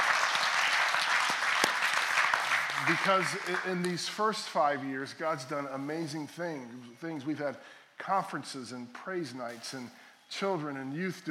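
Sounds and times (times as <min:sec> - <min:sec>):
church congregation applauding an anniversary: 0:00.0 - 0:04.8
speech: 0:02.8 - 0:11.2.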